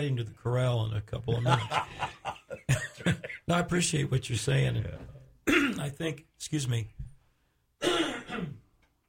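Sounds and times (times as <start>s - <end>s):
speech: 0.0s - 7.0s
laughter: 1.3s - 3.6s
person clearing throat in rough bursts and a harsh hack: 5.5s - 5.9s, 7.8s - 8.7s.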